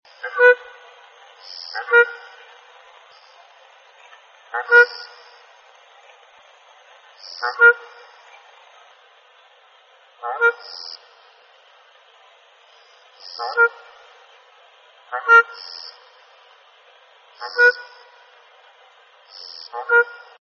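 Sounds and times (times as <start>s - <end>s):
grey-headed shelduck calling: 0.2s - 0.7s, 1.5s - 2.5s, 4.5s - 5.4s, 7.2s - 8.1s, 10.2s - 11.0s, 13.2s - 14.0s, 15.1s - 16.1s, 17.4s - 18.1s, 19.4s - 20.4s.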